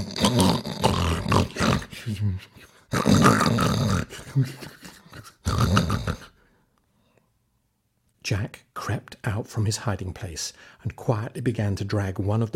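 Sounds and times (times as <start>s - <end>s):
voice imitating a sleeping giant's snuffling and snoring: 0.0s - 6.4s
speech: 2.1s - 4.8s, 8.3s - 12.5s.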